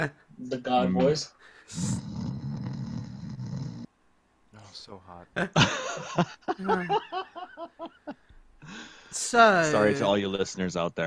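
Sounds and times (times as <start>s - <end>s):
speech: 0.0s - 2.3s, 4.7s - 11.0s
voice imitating a snore with heavy echo effect: 1.7s - 3.9s
laughter: 5.4s - 8.2s.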